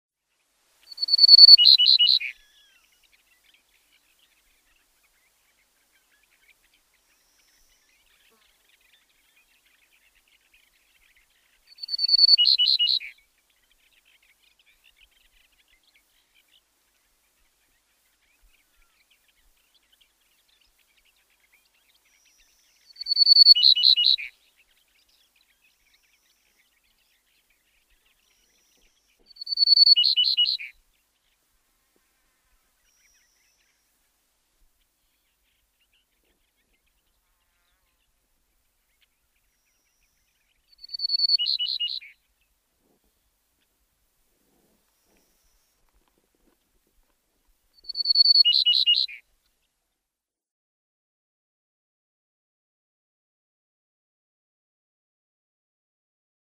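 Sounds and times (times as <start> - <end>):
Grey-necked Bunting singing: 0.9 - 31.5, 32.2 - 42.6, 47.7 - 49.6.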